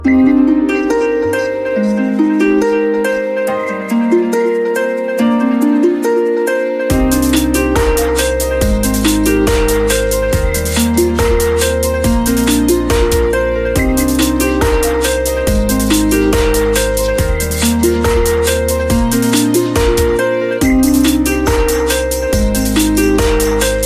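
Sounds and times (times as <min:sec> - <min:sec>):
iPhone 5s standard ringtone melody: 0:00.0 - 0:23.7.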